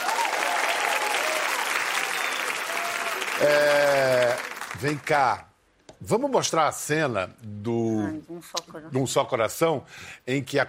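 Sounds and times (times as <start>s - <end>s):
studio audience applauding: 0.0s - 5.4s
speech: 3.4s - 10.6s.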